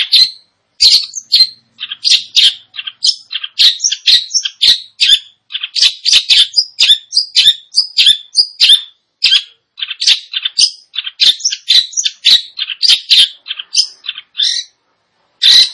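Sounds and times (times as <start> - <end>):
long-tailed shrike song of harsh chattering notes and scratchy squeaks: 0.0 - 14.7, 15.4 - 15.7.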